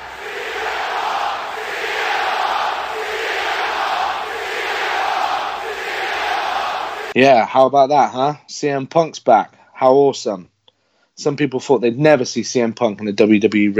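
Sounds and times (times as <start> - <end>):
large crowd cheering and chanting: 0.0 - 7.2
speech: 7.2 - 10.5, 11.2 - 13.7.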